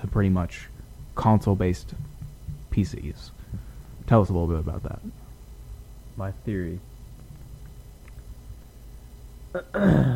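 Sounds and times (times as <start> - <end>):
speech: 0.2 - 2.1, 2.8 - 5.2, 6.2 - 6.9, 9.5 - 10.1
person clearing throat: 9.5 - 10.1.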